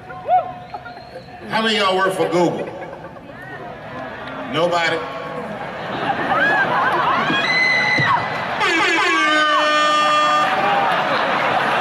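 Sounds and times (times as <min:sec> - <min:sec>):
laughter: 0:00.0 - 0:04.2, 0:05.3 - 0:07.6, 0:08.4 - 0:11.8
murmur and noise of a lively crowd: 0:00.0 - 0:11.8
speech: 0:01.4 - 0:02.7, 0:04.5 - 0:05.2
loud air horn blasts: 0:08.6 - 0:10.7.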